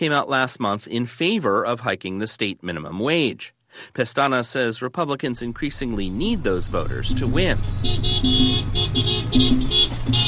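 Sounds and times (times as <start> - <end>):
speech: 0.0 - 10.2
engine rumble of a 60-car caravan rolling through a neighborhood: 5.4 - 10.2
car horn toots from a car caravan: 7.1 - 10.2.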